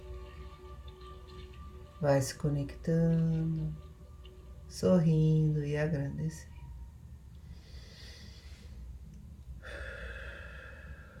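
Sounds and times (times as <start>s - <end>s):
low steady hum: 0.0s - 11.1s
speech: 2.0s - 3.8s, 4.7s - 6.5s
slow deep breath in and out: 7.4s - 9.0s, 9.6s - 11.1s.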